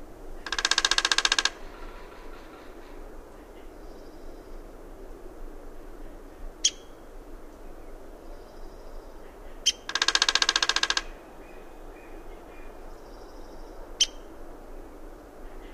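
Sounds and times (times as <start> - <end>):
Downy woodpecker drum roll: 0.4 - 2.9, 9.7 - 11.2
Downy woodpecker pik calls in western North America: 0.4 - 3.7, 6.6 - 6.9, 9.6 - 12.7.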